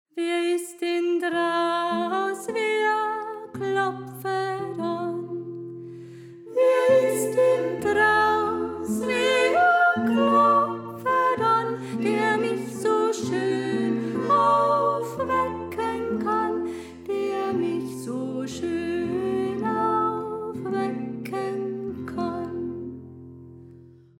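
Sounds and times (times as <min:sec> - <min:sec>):
soprano voice: 0:00.1 - 0:05.8, 0:06.4 - 0:23.2.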